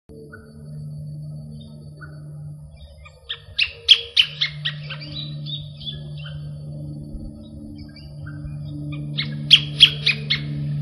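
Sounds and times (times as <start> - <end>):
Phacellodomus ruber calling: 0.1 - 10.8.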